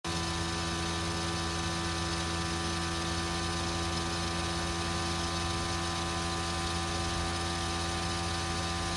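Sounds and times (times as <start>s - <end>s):
Fujitsu General RO-36LE air-to-water heat pump compressor running: 0.1s - 8.9s.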